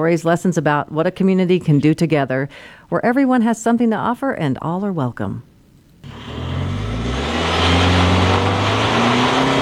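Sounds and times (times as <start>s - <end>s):
speech: 0.0s - 5.5s
gravel spraying from beneath UTV tires: 6.0s - 9.6s
side-by-side UTV engine roaring and revving in Center Creek Canyon: 6.0s - 9.6s.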